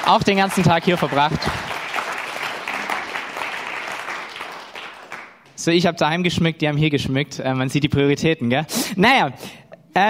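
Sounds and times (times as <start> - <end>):
audience applauding: 0.0 - 5.5
speech: 0.1 - 1.7, 5.6 - 10.0.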